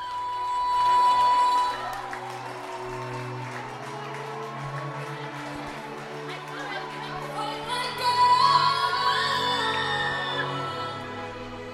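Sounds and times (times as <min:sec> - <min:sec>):
crowd clapping: 0:00.0 - 0:10.0
large audience cheering for surprise stage performer: 0:00.7 - 0:08.6.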